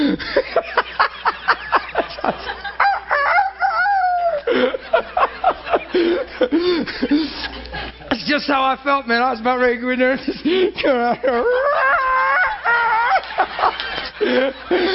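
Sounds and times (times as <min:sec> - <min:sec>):
laughter: 0:00.0 - 0:08.1, 0:10.0 - 0:14.9
rooster crowing: 0:02.8 - 0:04.4
speech: 0:08.6 - 0:11.7, 0:14.2 - 0:14.9.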